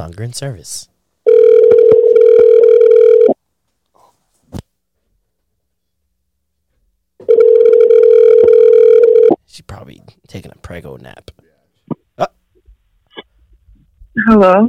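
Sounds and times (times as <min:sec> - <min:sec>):
speech: 0:00.0 - 0:00.9, 0:09.6 - 0:11.4, 0:14.2 - 0:14.6
telephone ringback tone on an outgoing call line: 0:01.3 - 0:03.4, 0:07.2 - 0:09.4.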